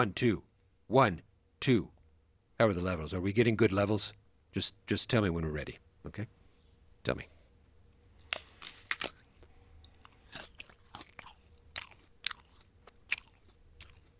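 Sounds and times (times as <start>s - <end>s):
speech: 0.0s - 1.9s, 2.6s - 6.4s, 7.0s - 7.3s
crunching and chewing an apple: 8.2s - 14.1s.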